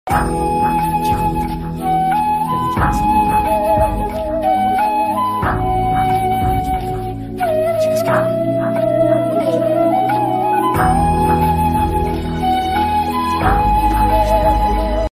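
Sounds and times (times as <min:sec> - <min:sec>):
romantic flute ringtone melody: 0:00.1 - 0:15.1.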